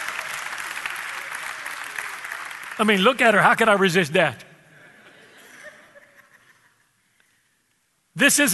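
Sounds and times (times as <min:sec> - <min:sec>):
audience applause: 0:00.0 - 0:03.8
speech: 0:02.8 - 0:04.4, 0:08.2 - 0:08.5
laughter: 0:04.8 - 0:07.0.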